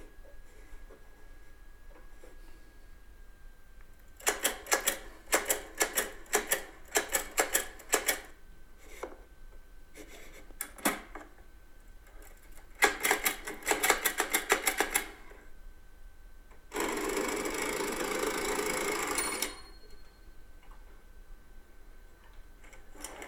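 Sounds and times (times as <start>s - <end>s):
typewriter typing: 4.2s - 8.3s, 12.3s - 15.2s, 16.8s - 19.6s.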